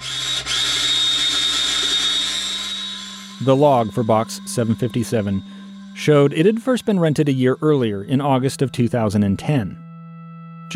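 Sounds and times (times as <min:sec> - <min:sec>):
power drill whirring: 0:00.0 - 0:06.8
speech: 0:03.4 - 0:09.8.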